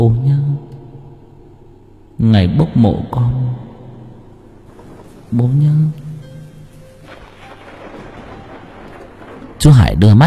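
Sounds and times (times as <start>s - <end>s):
speech: 0.0s - 0.4s, 2.2s - 3.6s, 5.3s - 6.0s, 9.6s - 10.2s
wind howling outside: 3.7s - 10.0s
rain falling outside: 4.6s - 10.2s.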